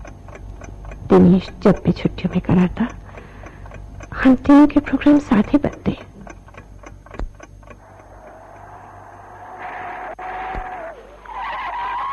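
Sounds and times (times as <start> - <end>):
sharp ticking clicks: 0.0 - 10.2
speech: 1.1 - 3.0, 4.2 - 6.1
car tires squealing as it brakes to a halt: 7.8 - 12.1.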